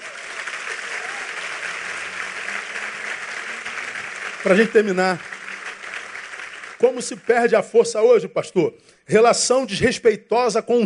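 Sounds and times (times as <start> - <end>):
audience at a church service applauding: 0.0 - 7.7
speech: 4.4 - 5.3, 6.8 - 10.8.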